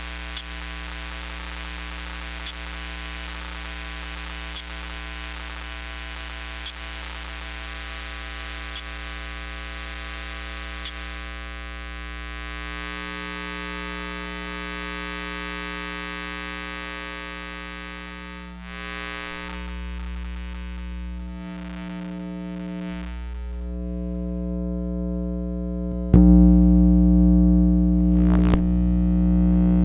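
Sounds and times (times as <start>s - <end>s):
hissy static-like wash: 0.0s - 23.7s, 28.2s - 28.7s
electromagnetic hum from household electronics: 0.0s - 29.8s
deep throbbing electromagnetic hum: 23.4s - 29.8s.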